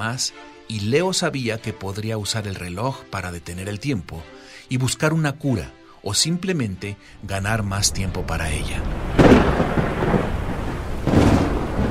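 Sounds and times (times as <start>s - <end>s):
speech: 0.0s - 9.6s
deep rolling thunder at night: 7.9s - 11.8s
steady rain at night: 8.4s - 11.8s.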